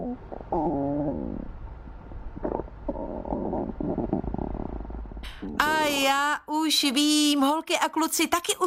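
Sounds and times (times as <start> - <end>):
stomach rumbling and gurgling: 0.0 - 1.6, 2.2 - 5.7
speech: 0.2 - 1.4, 5.2 - 8.6.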